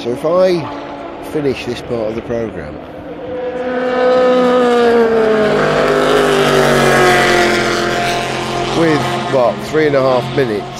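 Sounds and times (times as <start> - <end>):
speech: 0.0 - 3.0, 8.8 - 10.7
racing cars lapping a circuit at high speed: 0.0 - 10.7.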